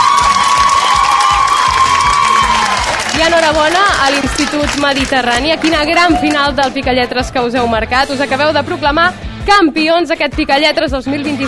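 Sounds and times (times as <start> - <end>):
cheering and whoops: 0.0 - 3.2, 5.7 - 6.5
large audience applauding: 0.0 - 6.9
speech: 3.3 - 11.4.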